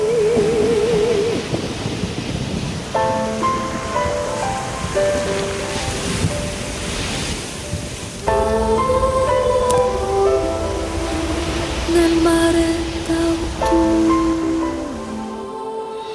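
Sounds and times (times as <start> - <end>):
autumn sea waves and surf rolling: 0.0 - 16.1
soft melodic music: 0.0 - 16.1.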